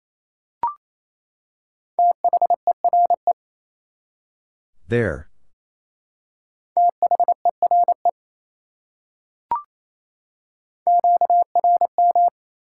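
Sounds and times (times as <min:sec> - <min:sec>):
Morse code CW beeps at steady mid-pitched tone: 0:02.0 - 0:03.3, 0:06.8 - 0:08.0, 0:10.9 - 0:12.3
speech: 0:04.9 - 0:05.3.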